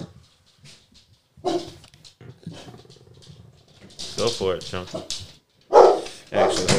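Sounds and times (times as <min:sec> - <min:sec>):
dog barking: 0:01.4 - 0:01.8, 0:05.7 - 0:06.7
speech: 0:04.2 - 0:05.2, 0:06.3 - 0:06.7.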